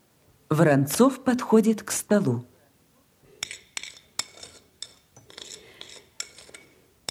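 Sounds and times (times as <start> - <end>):
speech: 0.5 - 2.5
utensil clinking on a plate while laying out pancakes: 3.4 - 7.1.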